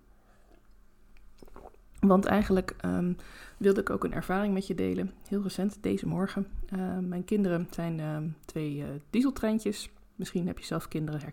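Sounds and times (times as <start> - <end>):
sipping a drink with soft slurping and a gulp: 0.4 - 2.0
speech: 2.0 - 11.3.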